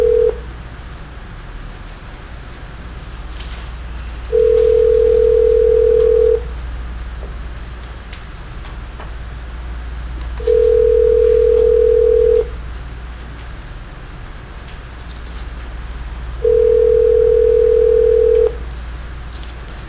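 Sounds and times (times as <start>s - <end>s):
steady electronic telephone line tones as a call is placed through an operator: 0.0s - 0.4s, 4.3s - 6.5s, 10.4s - 12.6s, 16.4s - 18.6s.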